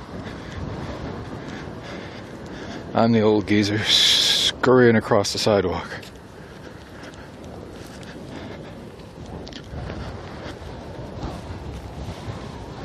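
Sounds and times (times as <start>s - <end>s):
wind buffeting a walker's microphone on a sidewalk outdoors: 0.0s - 12.8s
speech: 3.0s - 4.0s, 4.6s - 6.1s.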